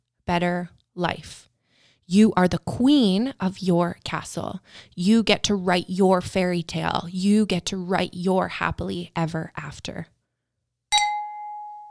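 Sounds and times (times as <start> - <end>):
speech: 0.3 - 1.5, 2.1 - 10.2
glasses clinking in a toast: 10.9 - 11.8.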